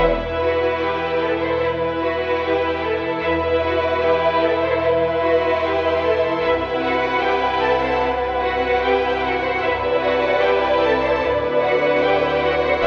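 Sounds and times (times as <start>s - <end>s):
sad strings loop: 0.0s - 12.8s.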